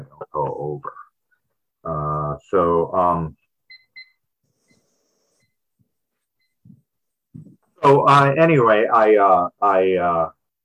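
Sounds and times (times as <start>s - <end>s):
speech: 0.4s - 1.0s, 1.8s - 3.4s, 7.8s - 10.4s
short electronic beeps from a timer being set: 3.7s - 4.8s, 6.4s - 6.6s
light handling thumps: 6.6s - 7.7s.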